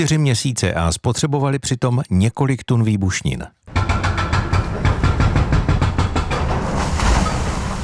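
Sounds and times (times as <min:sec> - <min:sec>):
speech: 0:00.0 - 0:03.6
excavator hammering through a tram tunnel wall in Brno Czech Republic: 0:03.7 - 0:07.3.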